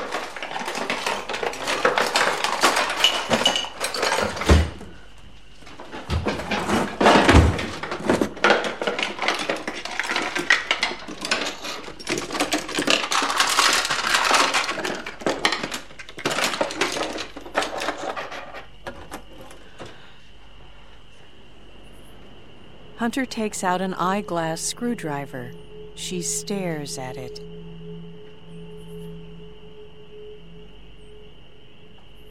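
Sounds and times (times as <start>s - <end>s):
metal utensils clattering in kitchen drawers being rummaged through: 0.0s - 4.6s, 6.5s - 19.0s
speech: 23.1s - 27.5s.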